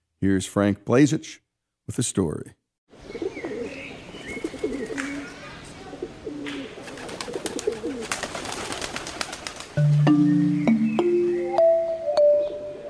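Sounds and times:
speech: 0:00.2 - 0:03.2
bird chirps: 0:03.0 - 0:05.9, 0:09.8 - 0:12.8
pigeons cooing in low burbling phrases: 0:03.0 - 0:12.8
rising sequence of steady musical tones: 0:09.8 - 0:12.8.

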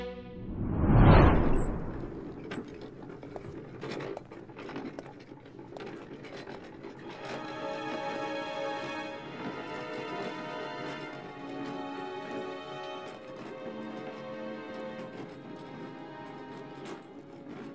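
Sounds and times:
brief whooshing swell: 0:00.2 - 0:03.0
cleaning cart rattling as it is pushed around at Christiansborg: 0:02.3 - 0:17.7.

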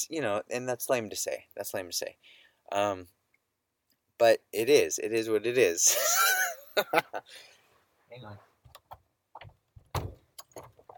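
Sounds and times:
speech: 0:00.0 - 0:03.2, 0:04.2 - 0:07.5, 0:08.1 - 0:08.5
laughter: 0:05.8 - 0:07.3
studio door closing: 0:09.4 - 0:10.9.

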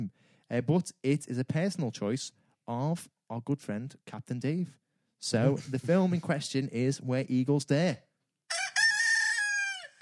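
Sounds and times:
speech: 0:00.5 - 0:08.1
rooster crowing: 0:08.5 - 0:10.0.

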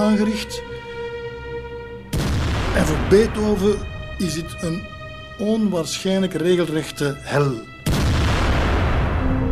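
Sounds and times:
speech: 0:00.0 - 0:00.7, 0:02.8 - 0:07.7
cannon fire and mortar explosions of forces bombarding a surrounded city: 0:02.1 - 0:03.7, 0:07.9 - 0:09.4.

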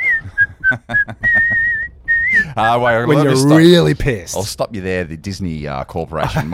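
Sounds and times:
person whistling a tune: 0:00.0 - 0:02.4
speech: 0:02.6 - 0:06.5.

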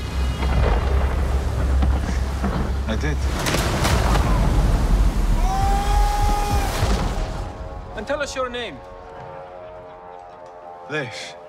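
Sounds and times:
rumbling storm thunder: 0:00.0 - 0:09.0
speech: 0:02.9 - 0:03.6, 0:08.2 - 0:09.0, 0:10.9 - 0:11.4.

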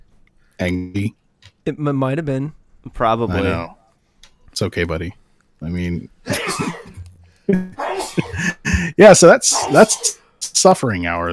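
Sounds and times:
speech: 0:00.6 - 0:03.8, 0:04.6 - 0:11.3
person sneezing: 0:06.3 - 0:07.0, 0:07.8 - 0:10.2
laughter: 0:07.5 - 0:09.0.

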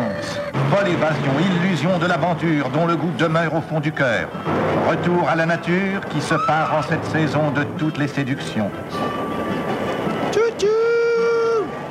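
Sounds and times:
long loud train whistle blast: 0:00.0 - 0:00.6, 0:08.9 - 0:11.9
train running on rails with clickety-clack: 0:00.0 - 0:11.9
speech: 0:00.7 - 0:09.3.

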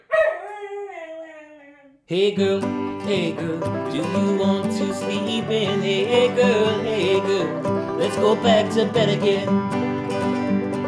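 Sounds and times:
dog howling with a bark-like onset: 0:00.0 - 0:02.0
speech: 0:02.1 - 0:09.8.

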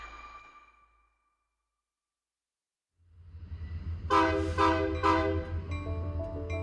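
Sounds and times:
passenger train low engine drone: 0:03.0 - 0:06.6
passenger train loud multi-tone horn blasts: 0:04.1 - 0:05.6.

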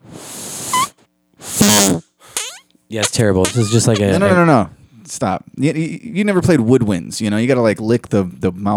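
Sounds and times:
fart noises blown by mouth through a novelty whoopee-cushion whistle: 0:00.0 - 0:02.7, 0:03.4 - 0:04.1
speech: 0:02.9 - 0:08.7.

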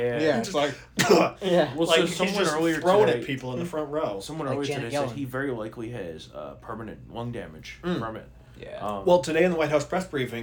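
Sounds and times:
speech: 0:00.0 - 0:10.4
imitated cough into a hand: 0:00.9 - 0:01.4.

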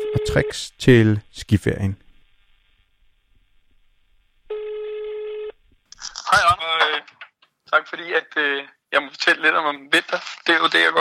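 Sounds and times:
speech: 0:00.2 - 0:02.0, 0:07.7 - 0:11.0
ringback tone over a phone line: 0:04.5 - 0:05.6.

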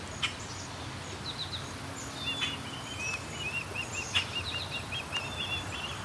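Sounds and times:
hiss: 0:00.0 - 0:06.0
osprey calling near a nest: 0:01.2 - 0:06.0.

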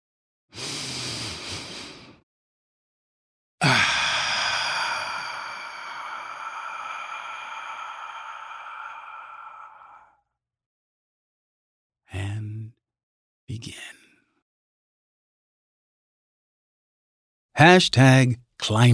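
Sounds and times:
person taking a deep breath: 0:00.5 - 0:02.2, 0:03.6 - 0:10.2
speech: 0:17.6 - 0:18.9.

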